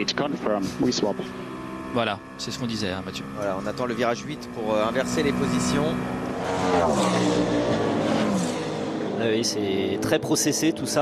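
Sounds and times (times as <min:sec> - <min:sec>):
speech: 0:00.0 - 0:07.9, 0:09.2 - 0:10.9
Toyota race cars driving on a racing circuit: 0:00.0 - 0:10.9.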